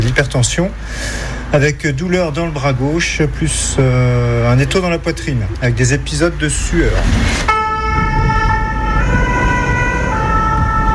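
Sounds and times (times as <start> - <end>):
deep rumble of a running ambulance engine: 0.0 - 10.9
speech: 0.2 - 7.5
fire brigade ambulance siren wailing: 7.5 - 10.9.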